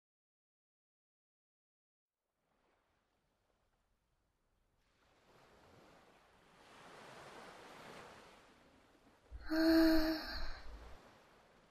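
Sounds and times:
ocean waves breaking on a beach shore at night: 2.4s - 3.7s, 4.7s - 11.6s.

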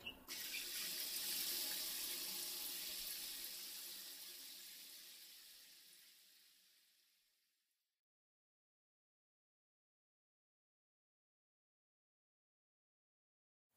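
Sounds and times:
shower water running: 0.0s - 7.4s.

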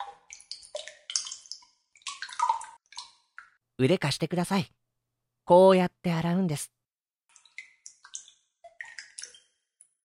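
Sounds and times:
rice bran bag soaked in hot water splashing: 0.0s - 3.6s, 7.3s - 10.0s
speech: 3.8s - 4.8s, 5.5s - 6.8s.

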